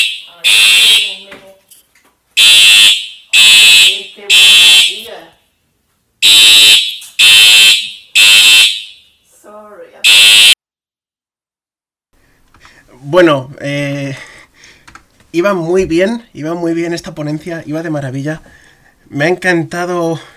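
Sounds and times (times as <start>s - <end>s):
loud fire alarm blaring in harsh bursts: 0.0s - 1.4s, 2.4s - 5.2s, 6.2s - 9.2s, 10.0s - 10.6s
speech: 15.4s - 20.3s.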